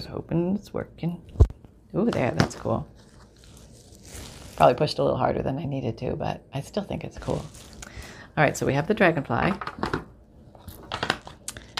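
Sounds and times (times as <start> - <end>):
speech: 0.0 - 3.0, 4.6 - 7.7, 8.4 - 10.0
small pieces of light paper crinkling while handled for an artwork: 2.4 - 4.8, 7.2 - 8.2.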